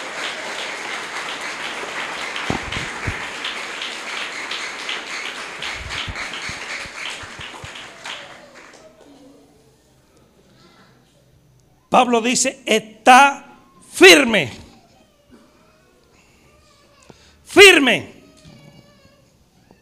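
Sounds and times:
church congregation applauding at an evening service: 0.0 - 9.3
speech: 12.0 - 14.6, 17.9 - 18.1.

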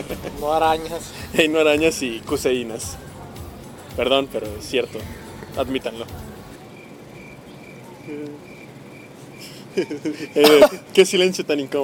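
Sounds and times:
speech: 0.4 - 3.1, 4.0 - 6.3, 8.1 - 8.5, 9.8 - 11.8
cricket chirps played from a computer: 1.0 - 11.3.

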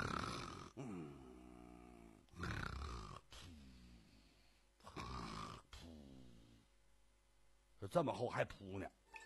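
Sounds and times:
person imitating heavy snoring of a man: 0.0 - 4.2, 4.8 - 6.6
speech: 0.8 - 1.2, 7.8 - 9.0.

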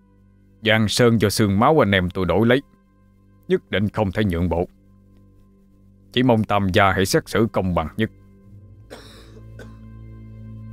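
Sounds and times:
steady low electrical hum: 0.0 - 10.7
speech: 0.6 - 2.7, 3.5 - 4.8, 6.1 - 8.2
old man coughing: 8.9 - 9.8.

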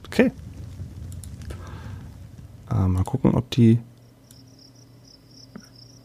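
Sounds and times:
low hum: 0.0 - 6.0
speech: 0.2 - 0.4, 2.7 - 3.9
crickets chirping at night: 4.0 - 6.0.

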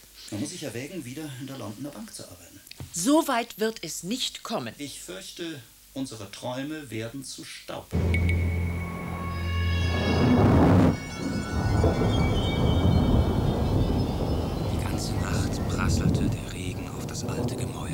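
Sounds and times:
speech: 0.3 - 8.3
rolling thunder: 8.0 - 17.9.

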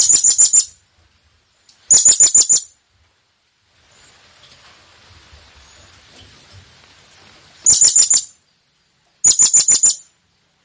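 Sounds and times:
blue-crowned hanging parrot calling with piercing high chirps: 0.0 - 0.8, 1.9 - 2.8, 7.6 - 8.4, 9.2 - 10.2.

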